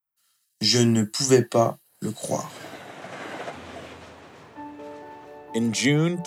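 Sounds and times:
speech: 0.6s - 2.6s, 5.5s - 6.2s
train rumbling along rails: 2.6s - 6.2s
faint sustained tones: 3.4s - 6.2s.

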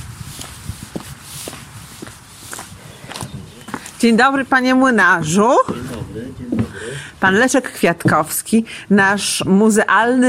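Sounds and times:
footsteps crunching on a rough outdoor path: 0.0s - 6.9s
speech: 4.0s - 6.5s, 7.2s - 10.2s.

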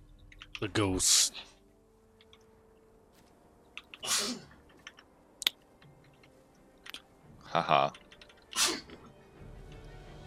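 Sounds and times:
speech: 0.6s - 1.5s, 4.2s - 4.5s, 7.6s - 8.0s
sharp sneeze: 4.0s - 4.5s, 8.6s - 8.9s.

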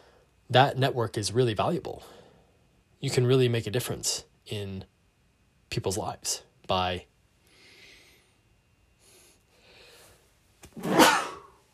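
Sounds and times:
speech: 0.5s - 2.2s, 3.0s - 4.9s, 5.7s - 7.1s, 10.8s - 11.1s
sneeze: 10.8s - 11.6s.

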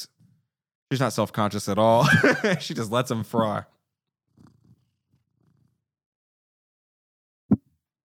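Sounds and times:
speech: 0.9s - 3.8s
laughter: 1.9s - 3.0s
cat purring: 4.3s - 5.8s.

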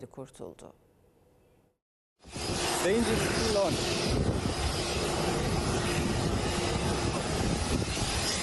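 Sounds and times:
speech: 0.0s - 0.9s, 2.2s - 5.4s
twin engines of a passenger plane roaring while landing: 2.2s - 8.4s.

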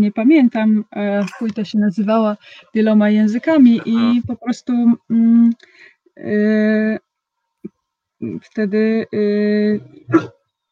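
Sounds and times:
speech: 0.0s - 7.1s, 8.2s - 10.4s
dog barking: 10.1s - 10.4s.

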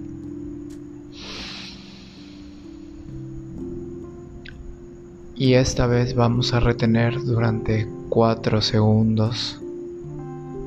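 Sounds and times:
person inhaling deeply during guided breathing exercise: 1.1s - 3.1s
speech: 5.4s - 9.6s.

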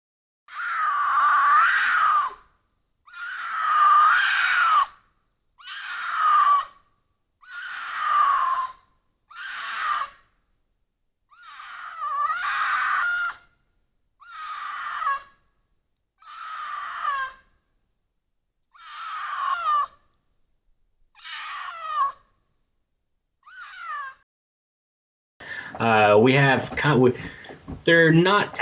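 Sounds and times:
mountain lion wailing mating screams: 0.5s - 2.4s, 3.1s - 5.0s, 5.6s - 6.8s, 7.4s - 10.2s, 11.3s - 13.4s, 14.2s - 15.4s, 16.2s - 17.6s, 18.8s - 20.0s, 21.2s - 22.3s
speech: 25.8s - 28.6s.

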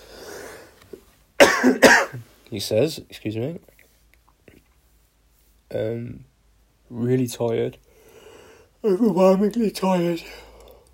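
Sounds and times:
raspy wheezy breath: 0.0s - 0.8s, 7.9s - 8.8s
loud cough: 1.4s - 2.2s
speech: 1.6s - 3.7s, 5.7s - 6.3s, 6.9s - 7.8s, 8.8s - 10.4s.

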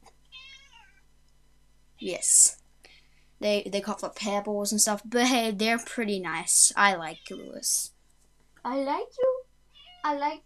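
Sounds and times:
faint steady hum: 0.0s - 10.4s
cat meowing: 0.3s - 0.9s, 9.8s - 10.1s
speech: 2.0s - 2.6s, 3.4s - 8.0s, 8.6s - 9.3s, 10.0s - 10.4s.

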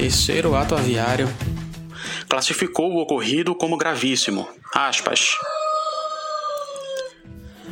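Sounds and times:
speech: 0.1s - 5.6s
rooster crowing: 4.7s - 7.2s.

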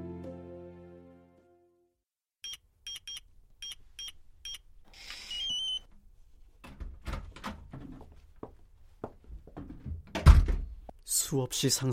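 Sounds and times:
quick electronic beeps of a glass living room door: 5.3s - 5.9s
glass living room door clunks and rattles: 6.6s - 8.0s, 9.6s - 10.9s
speech: 11.3s - 11.9s.

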